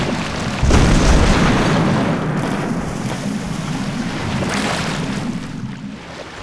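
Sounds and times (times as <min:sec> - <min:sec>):
ship destruct: 0:00.0 - 0:06.3.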